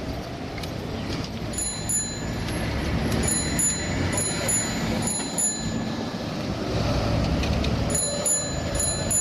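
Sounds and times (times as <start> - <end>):
steady rumbling street background: 0.0 - 9.2
small bright bell ringing in short chimes: 1.5 - 2.5, 3.1 - 6.2, 7.9 - 9.2.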